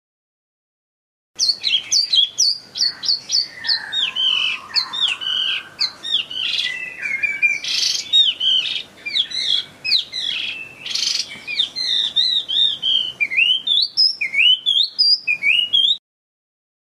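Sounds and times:
Chinese hwamei singing varied whistled phrases: 0:01.4 - 0:16.0.

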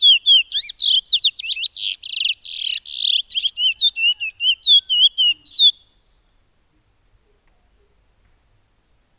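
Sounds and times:
piolet singing whistled and buzzy phrases: 0:00.0 - 0:06.0.

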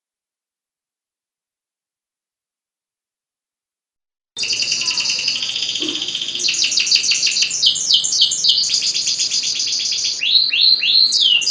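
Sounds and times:
standard canary singing a continuous high trilled song: 0:04.4 - 0:11.4.

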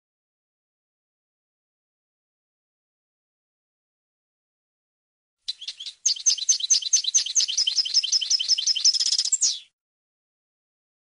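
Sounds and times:
European goldfinch song: 0:05.5 - 0:09.8.

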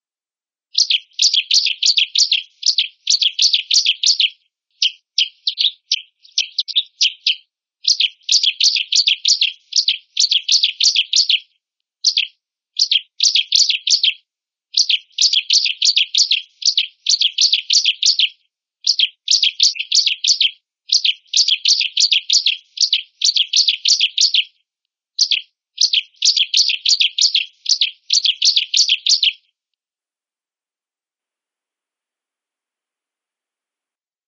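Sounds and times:
ciblek bird calling: 0:00.8 - 0:14.2, 0:14.8 - 0:24.5, 0:25.2 - 0:29.4.

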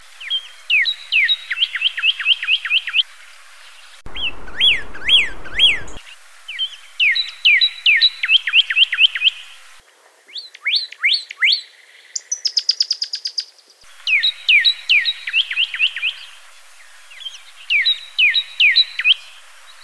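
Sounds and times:
pyrrhuloxia calling: 0:00.2 - 0:09.8, 0:13.9 - 0:19.8.

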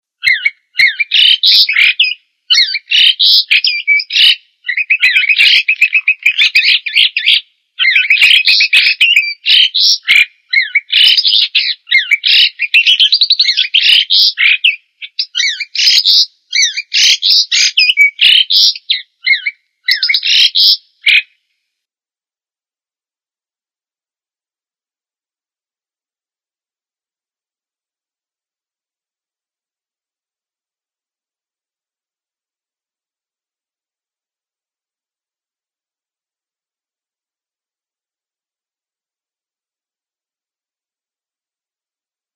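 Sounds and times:
jalak suren starling: 0:00.2 - 0:21.3.

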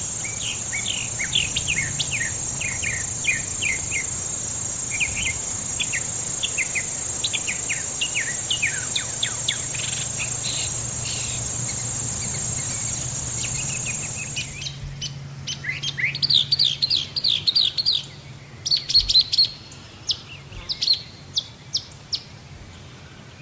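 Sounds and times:
steady high insect whine: 0:00.0 - 0:15.1
mockingbird song: 0:00.0 - 0:22.3.

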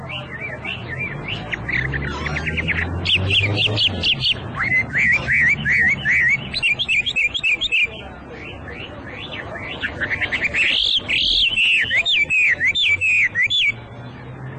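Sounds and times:
hwamei song of whistled phrases, trills and sweeping notes: 0:00.4 - 0:07.9, 0:09.8 - 0:13.8.

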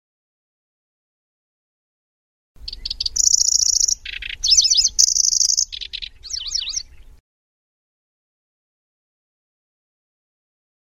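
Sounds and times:
lanceolated warbler singing reeling trills: 0:02.6 - 0:07.2.

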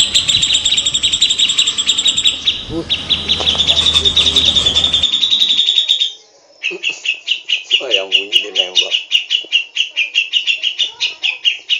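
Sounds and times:
Grey-cheeked bulbul song with rapid repeated chattering notes: 0:00.0 - 0:11.7.

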